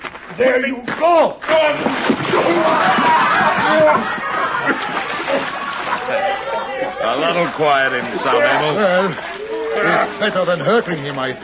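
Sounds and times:
speech: 0.4s - 5.4s, 6.1s - 11.4s
heavy splash of a man dumped into water: 1.6s - 6.7s
water sloshing and churning: 1.6s - 11.3s
raised voices: 2.3s - 11.4s
laughter: 2.7s - 7.0s.

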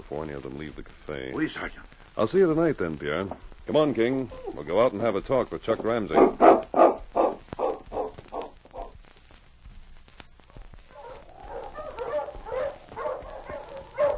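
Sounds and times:
speech: 0.1s - 6.7s
sled dog team barking and yelping: 6.2s - 9.0s, 10.9s - 14.1s.

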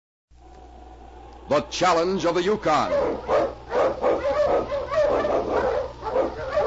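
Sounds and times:
low steady hum: 0.3s - 6.6s
speech: 1.5s - 3.5s
pack of Malamute sled dogs barking and yipping: 2.8s - 6.6s.

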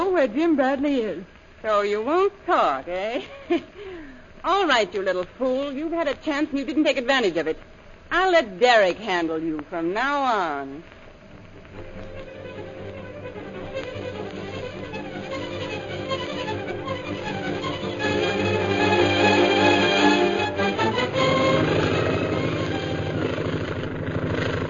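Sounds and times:
speech: 0.2s - 11.0s
airplane engine droning while circling to land: 11.7s - 24.6s.

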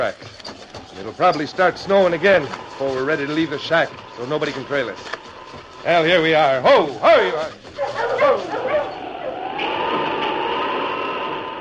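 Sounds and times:
speech: 0.0s - 0.4s, 1.0s - 5.2s, 5.8s - 7.7s
steady whooshing noise: 0.0s - 11.6s
dog barking and yipping: 7.7s - 9.5s.

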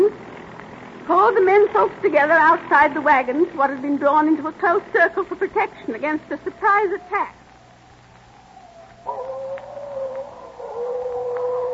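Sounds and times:
faint low hum: 0.0s - 11.7s
speech: 1.1s - 7.4s
coyotes howling: 5.0s - 11.7s.

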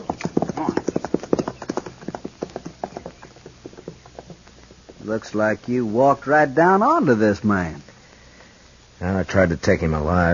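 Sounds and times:
horse hooves clip-clopping: 0.0s - 7.8s
speech: 5.1s - 7.9s, 9.0s - 10.3s.

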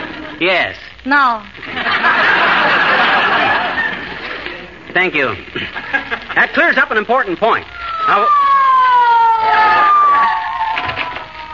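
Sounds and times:
speech: 0.4s - 2.8s, 5.0s - 8.4s
laughter: 1.6s - 4.6s, 5.5s - 6.5s
police squad car siren wailing: 7.7s - 11.5s.

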